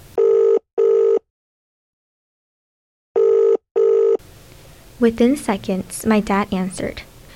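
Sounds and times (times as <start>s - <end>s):
phone ringback tone on an outgoing call: 0.2s - 1.2s, 3.2s - 4.2s
speech: 5.0s - 7.1s.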